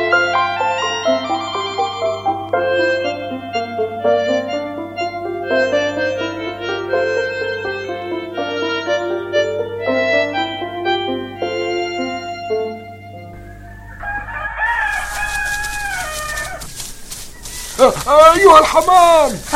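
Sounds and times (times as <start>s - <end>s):
light melodic notes: 0.0s - 14.0s, 14.7s - 19.5s
rooster crowing: 13.2s - 19.1s
speech: 17.8s - 19.5s.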